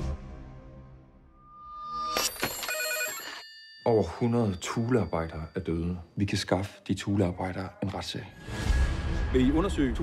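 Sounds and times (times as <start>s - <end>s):
telephones ringing with bright bell tones: 2.1s - 5.6s
speech: 3.9s - 10.0s.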